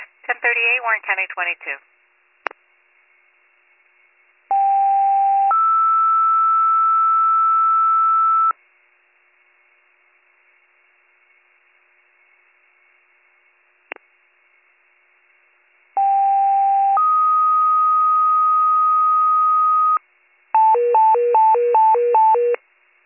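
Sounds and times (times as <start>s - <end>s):
speech: 0.4s - 2.0s
two-tone fire dispatch paging tones over radio: 4.5s - 8.5s, 16.0s - 20.0s, 20.6s - 22.6s.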